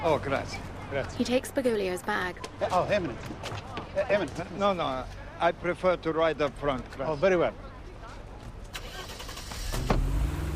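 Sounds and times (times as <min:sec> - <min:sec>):
speech: 0:00.0 - 0:07.6
car engine starting and idling: 0:08.7 - 0:10.5.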